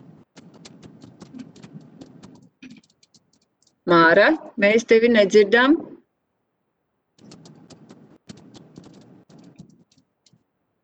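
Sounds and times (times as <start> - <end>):
meeting participant typing on a computer keyboard during a roll-call vote: 0.0 - 3.8, 7.2 - 10.4
speech: 3.9 - 5.9.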